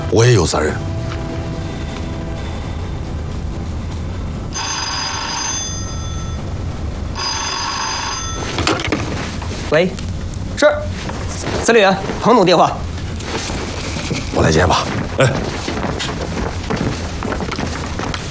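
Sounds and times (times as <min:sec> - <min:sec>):
low rumble: 0:00.0 - 0:18.2
telephone bell ringing: 0:04.5 - 0:06.6, 0:07.2 - 0:08.9.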